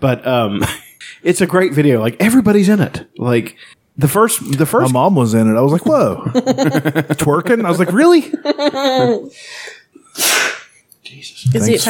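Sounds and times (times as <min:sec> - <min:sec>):
speech: 0:00.0 - 0:10.4, 0:11.1 - 0:11.8
laughter: 0:05.7 - 0:09.3
loud sneeze: 0:10.2 - 0:10.8.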